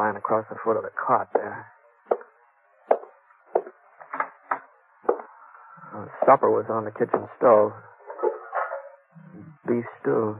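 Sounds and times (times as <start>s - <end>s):
speech: 0.0s - 1.8s, 5.9s - 7.9s, 9.7s - 10.3s
faint steady hum: 0.0s - 10.3s
axe splitting a pile of kindling near a barn: 2.9s - 3.8s.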